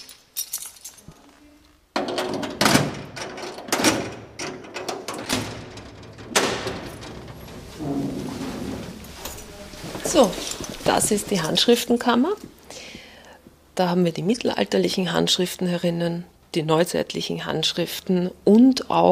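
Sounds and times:
heavy security door to a library's manuscript vault being opened: 2.0 - 9.6
rattling, scraping bursts of a security door: 2.0 - 11.6
speech: 10.2 - 12.6, 13.8 - 19.1.

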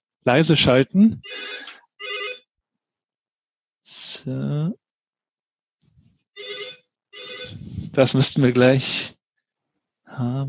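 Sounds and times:
speech: 0.2 - 1.7, 3.9 - 4.8, 8.0 - 9.2, 10.1 - 10.4
telephone ringing in a meeting room: 1.2 - 2.5, 6.4 - 7.6.

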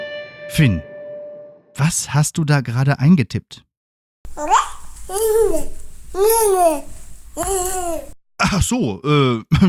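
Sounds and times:
speech: 0.6 - 0.9, 1.8 - 3.7, 4.3 - 9.6
baby babbling: 4.3 - 8.2.

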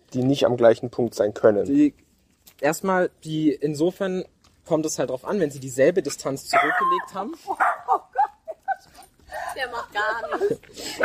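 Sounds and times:
speech: 0.1 - 2.0, 2.6 - 8.1, 9.5 - 11.0
dog barking: 6.5 - 8.0
laughter: 7.3 - 11.0.

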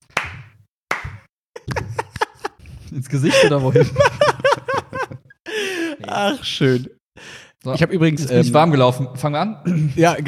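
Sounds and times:
hand clapping: 0.0 - 1.3
laughter: 1.6 - 6.8
speech: 2.9 - 5.1, 6.1 - 10.2.

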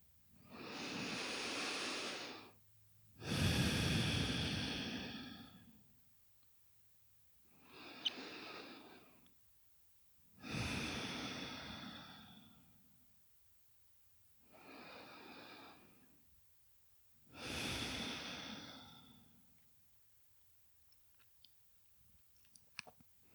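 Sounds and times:
slow steady breathing during a guided meditation: 0.4 - 2.6, 3.2 - 5.9, 7.4 - 9.3, 10.4 - 13.0, 14.4 - 16.3, 17.3 - 19.6.

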